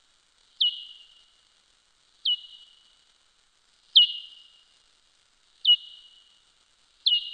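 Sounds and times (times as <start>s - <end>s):
soprano pipistrelle calls: 0.6s - 1.2s, 2.2s - 2.8s, 4.0s - 4.6s, 5.6s - 6.3s, 7.0s - 7.3s.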